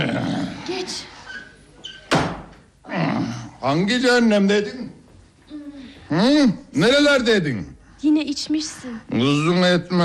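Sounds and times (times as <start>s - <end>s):
speech: 0.8s - 1.2s, 3.6s - 5.0s, 6.1s - 10.0s
door squeaking open: 1.3s - 2.4s
door thudding shut: 2.0s - 2.6s.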